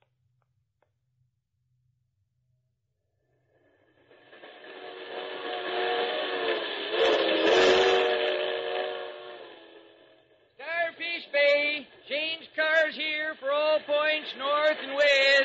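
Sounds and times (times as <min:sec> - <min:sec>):
loud sustained train whistle blaring: 0:04.3 - 0:15.4.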